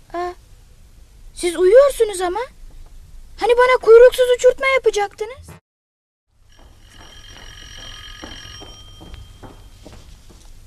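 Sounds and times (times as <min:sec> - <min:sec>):
speech: 0:01.4 - 0:02.6, 0:03.4 - 0:05.4
doorbell ringing with a bright sustained electric tone: 0:06.5 - 0:10.1
soft knocking or stepping sounds: 0:06.6 - 0:10.6.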